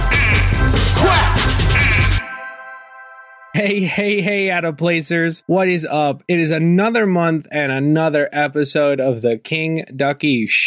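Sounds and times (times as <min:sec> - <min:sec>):
duck quacking: 0:00.0 - 0:02.2
speech: 0:03.6 - 0:10.6.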